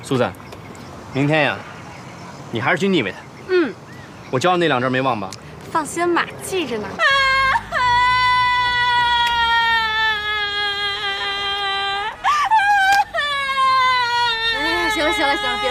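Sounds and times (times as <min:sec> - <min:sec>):
speech: 0:00.1 - 0:00.4, 0:01.2 - 0:01.7, 0:02.5 - 0:07.2, 0:15.1 - 0:15.7
woman crying and sobbing: 0:06.9 - 0:15.7.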